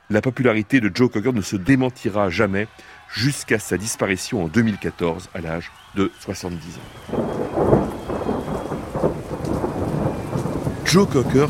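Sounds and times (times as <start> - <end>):
speech: 0.1 - 8.0, 10.9 - 11.4
torrential rain pouring down in a thunderstorm over an outdoor music festival: 5.7 - 11.4
deep rolling thunder in a thunderstorm over an outdoor music festival: 6.9 - 11.4.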